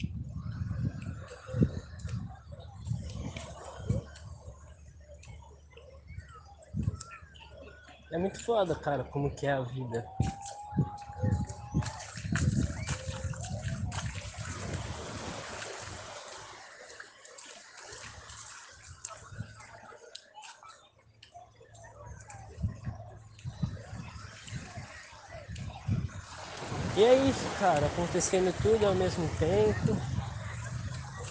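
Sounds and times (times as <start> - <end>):
faint indistinct voices: 0.0 - 31.2
water splashes: 0.0 - 31.2
speech: 8.2 - 10.9, 27.6 - 30.1
sea surf rushing at Barequeçaba beach: 14.5 - 16.9, 26.2 - 31.2.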